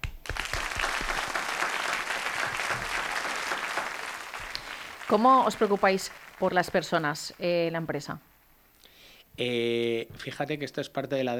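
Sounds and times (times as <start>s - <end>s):
group of people clapping: 0.0s - 7.6s
speech: 5.1s - 8.3s, 9.4s - 11.3s.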